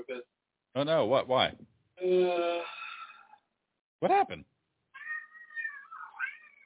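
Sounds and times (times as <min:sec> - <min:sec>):
speech: 0:00.8 - 0:02.6, 0:04.0 - 0:04.5
cat meowing: 0:05.0 - 0:06.6.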